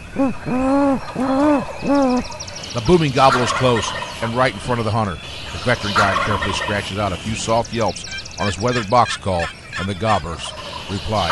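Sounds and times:
man imitating great horned owl hoots by voice on a ridge during a turkey hunt: 0.0s - 2.4s
speech: 0.2s - 11.3s.

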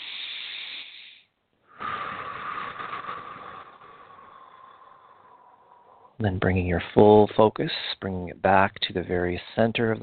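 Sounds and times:
deep breath during a guided meditation: 0.0s - 6.2s
speech: 6.2s - 10.0s.

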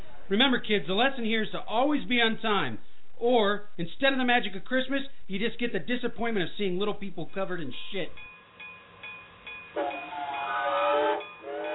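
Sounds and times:
speech: 0.3s - 8.3s
steam train whistle: 9.8s - 11.7s.

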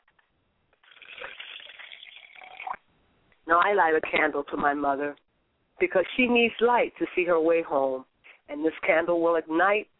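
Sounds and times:
liquid pouring from a glass: 0.8s - 2.8s
speech: 3.5s - 5.2s, 5.8s - 9.9s.

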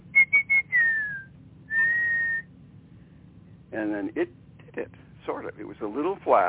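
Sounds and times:
person whistling a phrase mimicking a bird's song: 0.0s - 2.5s
faint low hum: 0.0s - 6.4s
speech: 3.7s - 6.4s.

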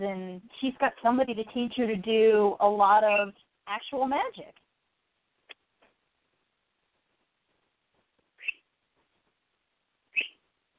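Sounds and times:
speech: 0.0s - 4.6s
pet bird chirping: 8.4s - 8.7s, 10.1s - 10.4s.

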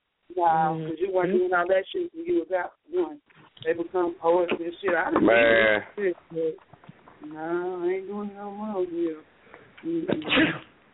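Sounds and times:
speech: 0.3s - 10.7s
person sneezing: 10.1s - 10.7s.

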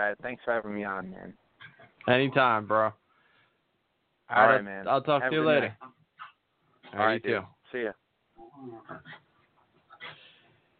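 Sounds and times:
speech: 0.0s - 1.4s, 2.0s - 3.0s, 4.3s - 6.0s, 6.9s - 8.0s, 8.6s - 9.2s
dog grunting and whimpering while rolling around on a floor: 8.4s - 10.2s.

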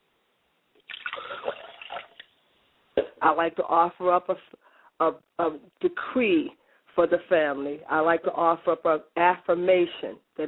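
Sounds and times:
faint drips of liquid: 0.8s - 2.3s
liquid poured out as a libation: 0.8s - 2.4s
speech: 3.2s - 10.4s.

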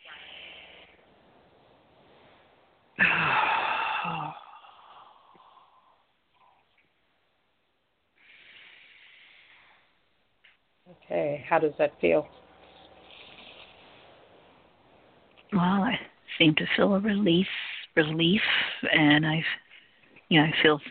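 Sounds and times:
person taking a deep breath: 3.0s - 6.0s, 8.2s - 10.0s
speech: 11.0s - 12.4s, 15.5s - 19.6s, 20.3s - 20.8s.

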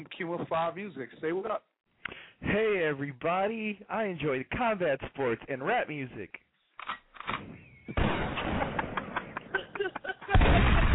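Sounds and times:
speech: 0.0s - 1.7s, 2.4s - 6.4s
gunshot sound effects: 7.2s - 9.4s, 10.3s - 10.9s
heavy booming blast: 8.0s - 9.0s, 10.3s - 10.9s
laughter: 8.5s - 10.9s.

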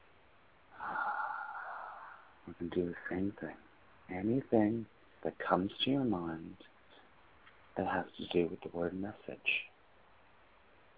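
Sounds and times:
soft inhaled breath taken with eyes shut during a guided writing exercise: 0.8s - 2.4s
speech: 2.5s - 6.7s, 7.8s - 9.7s.

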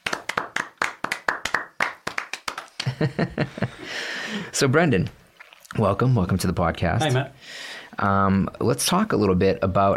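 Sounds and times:
small group clapping: 0.0s - 3.5s
laughter: 2.8s - 4.0s
speech: 3.0s - 9.9s.

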